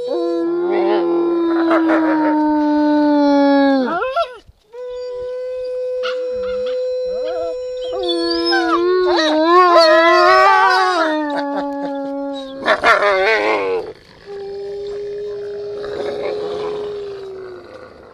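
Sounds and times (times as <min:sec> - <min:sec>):
wolf howling: 0:00.0 - 0:18.1.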